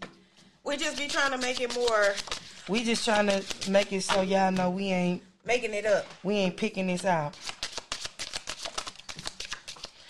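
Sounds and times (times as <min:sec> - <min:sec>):
speech: 0:00.7 - 0:07.5
deck of cards being shuffled: 0:00.8 - 0:04.7, 0:07.3 - 0:10.0.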